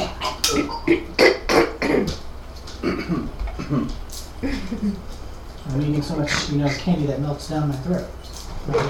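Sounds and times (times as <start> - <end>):
person coughing harshly: 0.0 - 2.2, 2.8 - 5.0
speech: 5.7 - 8.8.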